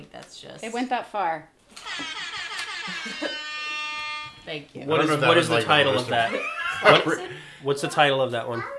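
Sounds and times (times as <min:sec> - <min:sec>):
speech: 0:00.0 - 0:02.2, 0:03.0 - 0:03.5, 0:04.4 - 0:08.7
air horn blaring: 0:01.8 - 0:06.2
laughter: 0:01.9 - 0:04.0, 0:05.0 - 0:07.7.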